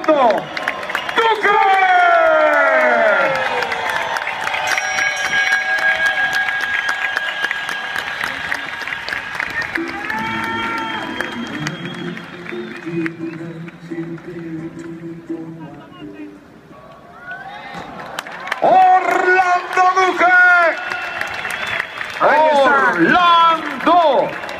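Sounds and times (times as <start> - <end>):
large crowd cheering and whooping: 0.0 - 13.2, 17.1 - 24.5
large crowd clapping: 0.0 - 15.1, 17.9 - 24.5.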